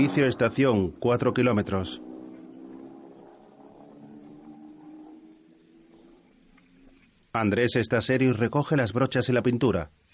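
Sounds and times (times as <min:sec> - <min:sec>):
speech: 0:00.0 - 0:02.1, 0:07.4 - 0:10.0
car engine humming as the vehicle rolls in: 0:00.0 - 0:07.4.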